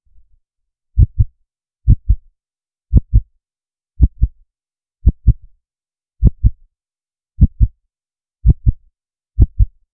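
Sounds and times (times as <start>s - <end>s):
heartbeat: 1.0s - 2.3s, 2.9s - 3.3s, 4.0s - 4.4s, 5.0s - 5.5s, 6.2s - 6.6s, 7.4s - 7.8s, 8.4s - 9.8s.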